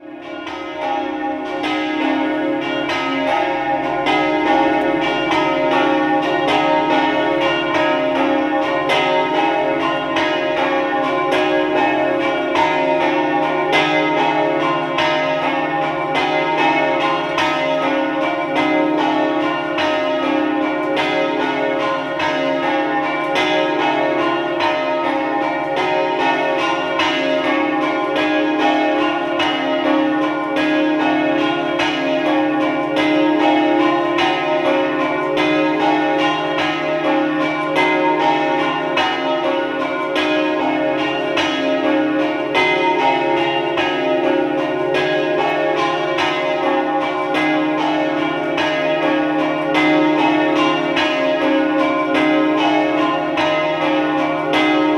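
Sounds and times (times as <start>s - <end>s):
bells ringing in Cordenons: 0.0s - 54.9s.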